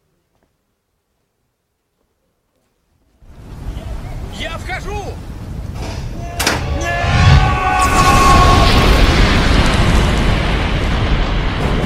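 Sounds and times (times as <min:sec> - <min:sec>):
heavy roaring rumble after an explosion on a ship: 0:05.5 - 0:11.8
explosion on board a ship: 0:05.8 - 0:11.8.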